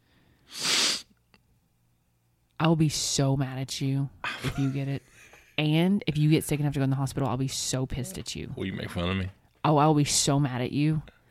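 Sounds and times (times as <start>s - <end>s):
person sniffing through the nose: 0.4s - 1.1s
speech: 2.6s - 11.2s.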